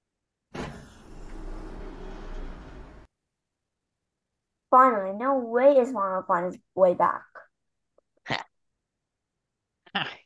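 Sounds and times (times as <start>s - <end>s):
sci-fi spaceship door sliding shut with mechanical whoosh: 0.5s - 3.1s
speech: 4.7s - 7.4s, 10.0s - 10.2s.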